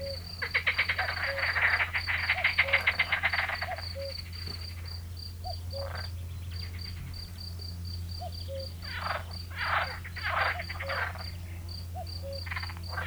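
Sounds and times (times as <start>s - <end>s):
rattling frog croaks: 0.0s - 4.2s, 8.2s - 11.4s, 12.0s - 13.0s
field cricket chirping: 0.0s - 13.0s.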